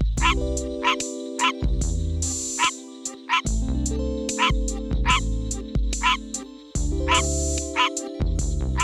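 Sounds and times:
sustained low music: 0.0s - 8.8s
green tree frog short nasal barking calls: 0.2s - 1.6s, 2.5s - 3.5s, 4.4s - 8.1s.

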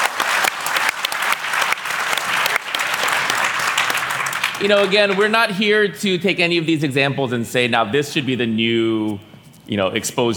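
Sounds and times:
audience applause for a panel: 0.0s - 5.6s
speech: 4.6s - 10.3s.

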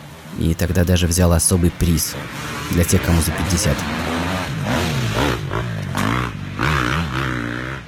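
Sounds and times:
speech: 0.4s - 4.8s
new motorcycle engine revving on a forest trail: 3.4s - 7.8s.

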